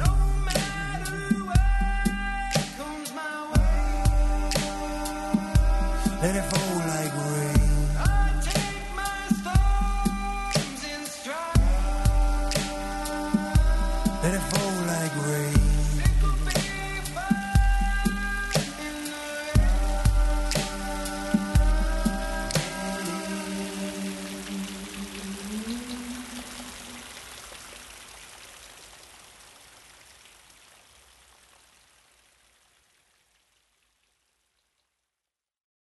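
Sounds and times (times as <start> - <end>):
full-band pop song playing: 0.0 - 26.1.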